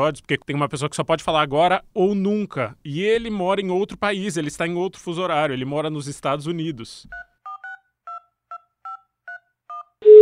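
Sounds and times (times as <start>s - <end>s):
speech: 0.0s - 7.3s
telephone keypad tones dialing an international call: 8.9s - 10.2s
steady telephone tone: 9.7s - 10.2s.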